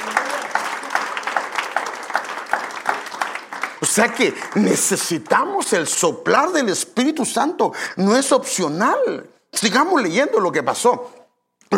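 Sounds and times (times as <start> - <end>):
audience applauding loudly: 0.0 - 5.8
speech: 3.8 - 11.2.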